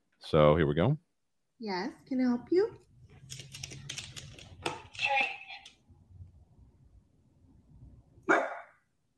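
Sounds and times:
speech: 0.3 - 3.6
dog barking: 8.2 - 8.8.

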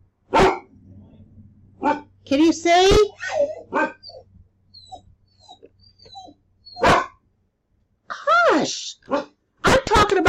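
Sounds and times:
dog barking: 0.3 - 0.7, 1.8 - 2.1, 3.1 - 4.2, 4.9 - 7.2, 9.1 - 9.8
speech: 1.8 - 4.0.

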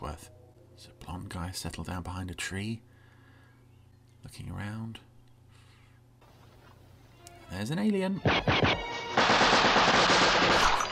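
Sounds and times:
speech: 0.1 - 2.9, 4.2 - 5.1, 7.5 - 8.9
rapid automatic gunfire from a sci-fi television scene in a forest: 8.3 - 10.9.

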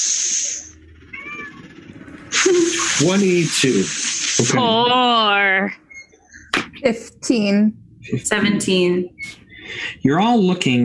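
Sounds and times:
brief burst of hissy noisy sound: 0.0 - 0.7, 2.3 - 4.7
cat meowing: 1.1 - 1.8
speech: 2.5 - 5.8, 6.8 - 9.2, 10.0 - 10.8.

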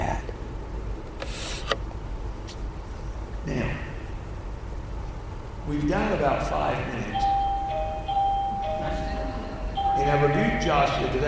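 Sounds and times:
low room rumble: 0.0 - 11.2
speech: 5.7 - 6.9, 10.0 - 11.2
bell rung to signal end of time: 7.1 - 11.2.

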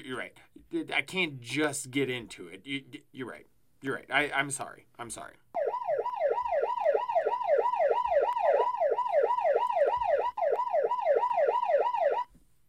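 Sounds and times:
speech: 0.1 - 5.7
ambulance siren yelping: 5.6 - 12.3.

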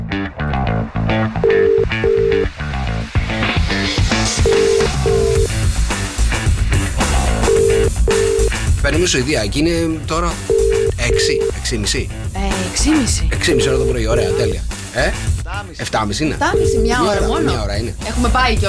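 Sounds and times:
music: 0.0 - 18.6
phone dialing beeps: 1.4 - 2.5, 4.4 - 5.5, 7.5 - 8.5, 10.5 - 11.6, 13.4 - 14.6, 16.5 - 17.6
phone line ringback tone: 1.4 - 2.5, 4.4 - 5.5, 7.4 - 8.6, 10.5 - 11.6, 13.4 - 14.6, 16.5 - 17.6
speech: 9.0 - 18.6.

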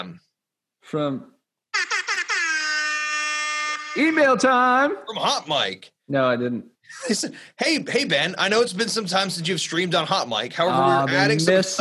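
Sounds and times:
speech: 0.8 - 1.4, 4.0 - 11.8
air horn blasting: 1.8 - 4.4.

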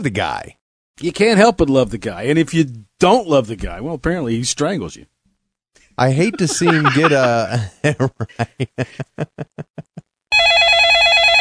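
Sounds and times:
speech: 0.0 - 5.1, 6.0 - 10.7
laughter: 6.1 - 10.0
telephone ringing: 10.3 - 11.3.

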